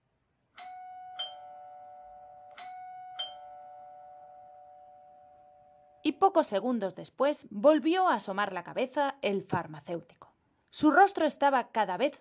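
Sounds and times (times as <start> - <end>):
two-tone ding-dong doorbell ringing: 0.6 - 6.2
speech: 6.1 - 12.1.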